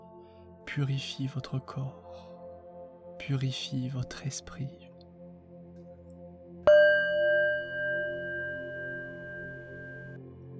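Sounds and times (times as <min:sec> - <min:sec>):
speech: 0:00.7 - 0:02.3, 0:03.2 - 0:04.9
Tibetan singing bowl struck and ringing during a sound-healing meditation: 0:06.7 - 0:10.2.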